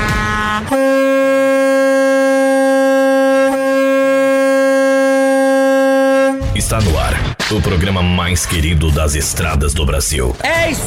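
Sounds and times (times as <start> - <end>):
truck air horns blaring: 0.0 - 6.6
speech: 6.6 - 10.8.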